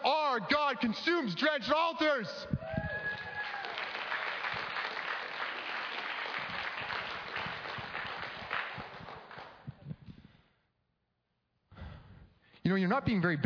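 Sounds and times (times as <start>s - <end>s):
speech: 0.4s - 2.6s, 12.7s - 13.4s
crowd clapping: 3.0s - 9.8s.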